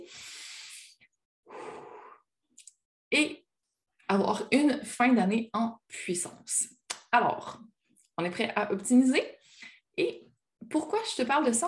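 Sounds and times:
long deep breath in and slow full exhale: 0.0 - 2.3
speech: 3.1 - 3.4, 4.1 - 9.4, 10.0 - 11.6.

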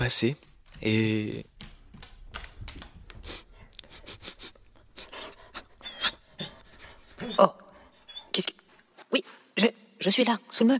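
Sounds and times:
speech: 0.1 - 1.7, 7.4 - 7.6, 8.4 - 10.7
dog panting and sniffing: 1.8 - 9.1.

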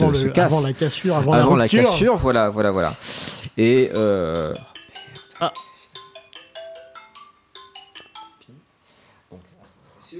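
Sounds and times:
speech: 0.1 - 4.7, 5.4 - 5.6
phone ringtone playing a bright melodic tune for an unanswered incoming call: 3.6 - 8.6.

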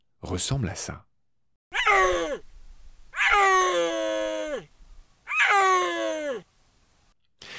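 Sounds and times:
speech: 0.2 - 1.1
female snow leopard yowling for males: 1.7 - 2.4, 3.1 - 6.5.

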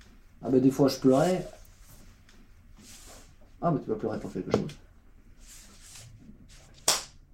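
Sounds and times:
speech: 0.4 - 1.6, 3.6 - 4.8
sharp loud hand slap mimicking a face slap: 6.8 - 7.2.

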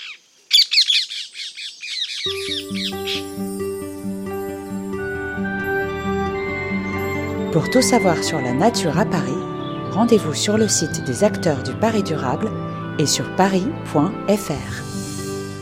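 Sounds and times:
ring-necked parakeet squawking calls: 0.0 - 3.3
speech: 2.2 - 2.5, 7.6 - 14.8
steady instrumental music: 2.3 - 15.6.

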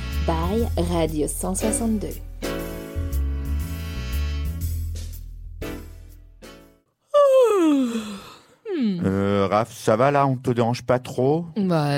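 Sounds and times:
jazzy music: 0.0 - 6.8
speech: 0.2 - 2.3, 9.0 - 11.9
person yawning: 7.1 - 9.4.

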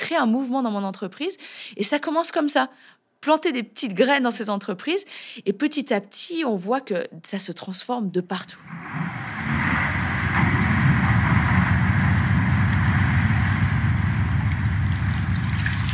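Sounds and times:
speech: 0.1 - 9.6
massive chunk of glacier crashing into the ocean with deep roaring rumble: 8.6 - 15.9.

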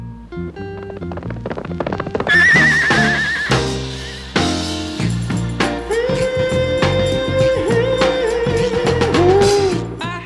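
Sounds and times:
loud busy musical backing from a TV theme: 0.0 - 10.2
horse whinnying: 1.0 - 4.2.

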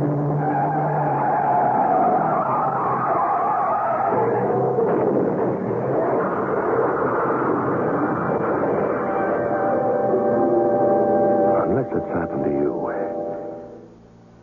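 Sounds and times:
car tires screeching and skidding across pavement: 0.0 - 10.2
trailer truck engine roaring: 0.0 - 13.8.

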